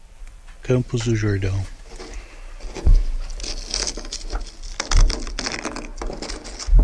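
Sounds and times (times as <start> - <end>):
soft low bumps: 0.0 - 6.8
speech: 0.7 - 1.8
brittle crackling of frozen plane tree leaf: 1.0 - 6.8
plane tree leaf frozen to icy car roof peeled off in cold weather in Campos do Jordão: 1.8 - 6.8.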